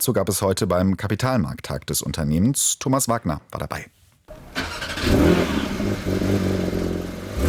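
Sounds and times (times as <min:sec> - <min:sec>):
speech: 0:00.0 - 0:06.9
Porsche 911 sports car engine starting and idling: 0:04.3 - 0:07.4.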